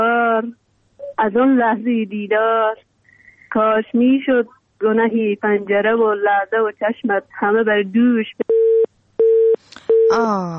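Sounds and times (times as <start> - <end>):
speech: 1.2 - 2.9, 3.5 - 8.5, 10.1 - 10.5
telephone busy signal after a call is cut off: 8.4 - 10.2.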